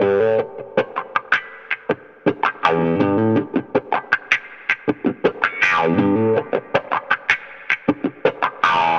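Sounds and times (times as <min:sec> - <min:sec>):
wah-wah guitar in hip-hop style: 0:00.0 - 0:08.9.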